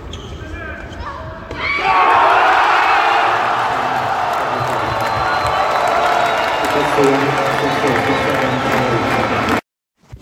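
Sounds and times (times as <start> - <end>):
large stadium crowd at a tennis match roaring and cheering: 1.6 - 9.6.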